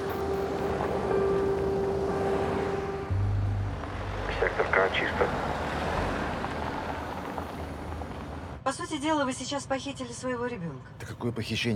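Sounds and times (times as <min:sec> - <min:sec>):
ambulance engine drone pulling away from a parking lot: 0:00.0 - 0:08.6
speech: 0:04.6 - 0:05.5, 0:08.7 - 0:11.7.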